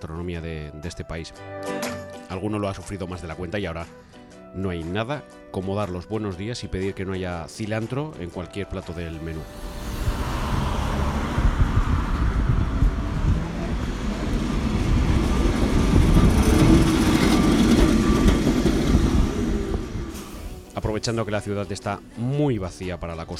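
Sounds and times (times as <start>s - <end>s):
speech: 0.0s - 9.7s, 21.0s - 23.3s
faint street ambience: 8.6s - 23.3s
wooden tram rolling along city streets: 9.1s - 21.6s.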